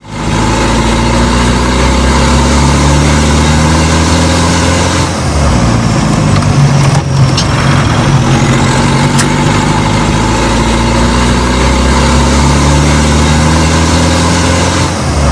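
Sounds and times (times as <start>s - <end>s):
Defender vehicle engine with no gear shift: 0.0s - 15.3s.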